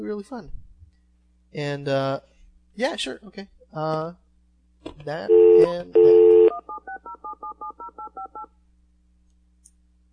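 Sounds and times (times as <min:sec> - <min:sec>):
speech: 0:00.0 - 0:00.6, 0:01.5 - 0:04.2, 0:04.8 - 0:06.2, 0:06.8 - 0:08.6
low steady hum: 0:00.0 - 0:10.1
phone keypad dialing tones: 0:05.3 - 0:08.5.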